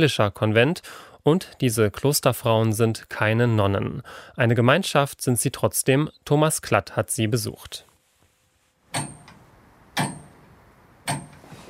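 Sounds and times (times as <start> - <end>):
speech: 0.0 - 7.9
old tower clock mechanism ticking with metallic ring: 8.9 - 9.4, 10.0 - 10.4, 11.0 - 11.4.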